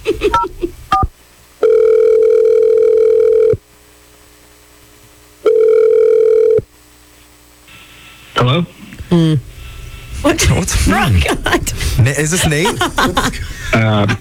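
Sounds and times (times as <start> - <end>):
laughter: 0.0 - 0.8, 9.9 - 14.1
telephone dialing beeps: 1.6 - 3.6, 5.5 - 6.6
speech: 10.7 - 14.1.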